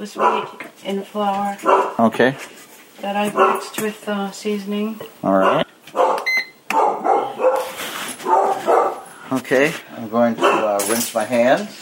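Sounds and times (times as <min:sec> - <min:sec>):
dog barking: 0:00.0 - 0:00.6, 0:01.6 - 0:02.1, 0:03.3 - 0:03.8, 0:05.4 - 0:09.1, 0:10.4 - 0:10.9
speech: 0:00.0 - 0:06.0, 0:09.3 - 0:11.8.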